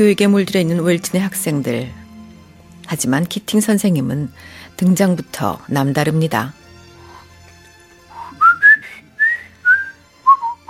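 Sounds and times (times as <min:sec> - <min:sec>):
speech: 0:00.0 - 0:02.0, 0:02.9 - 0:06.6
teacher whistling a melody: 0:08.1 - 0:10.6.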